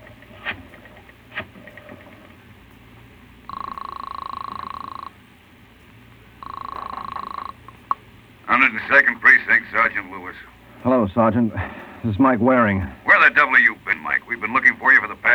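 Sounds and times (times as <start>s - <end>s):
low hum: 0.0s - 15.3s
steady electronic telephone ringing tone: 3.4s - 5.2s, 6.4s - 8.0s
telephone being dialed with sharp clicks: 3.5s - 5.1s, 6.4s - 8.0s
person speaking on phone: 6.4s - 15.3s
speech: 8.6s - 15.3s.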